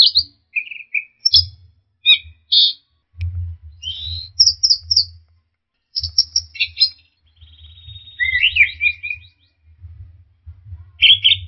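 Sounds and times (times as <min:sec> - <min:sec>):
orange-headed thrush singing whistled and scratchy phrases: 0:00.0 - 0:02.9, 0:03.7 - 0:05.2, 0:05.9 - 0:09.7, 0:11.0 - 0:11.4
low rumbling noise: 0:03.0 - 0:05.4, 0:06.0 - 0:11.4.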